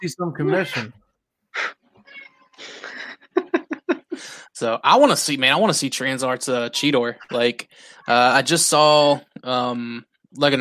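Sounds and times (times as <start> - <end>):
speech: 0.0 - 1.0, 4.6 - 10.5
cat yowling, hissing and chirping: 0.4 - 0.9, 2.0 - 2.6
laughter: 2.6 - 9.8.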